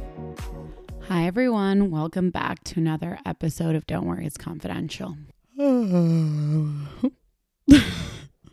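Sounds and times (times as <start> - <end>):
speech: 1.1 - 8.1
person yawning into the microphone: 5.6 - 7.1.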